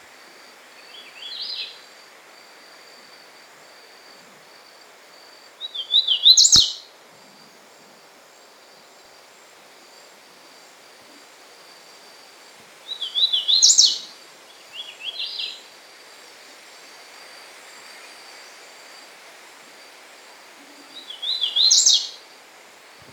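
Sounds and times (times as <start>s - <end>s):
Hooded Warbler Setophaga citrina: 5.6s - 6.9s, 12.9s - 15.6s, 21.0s - 22.2s.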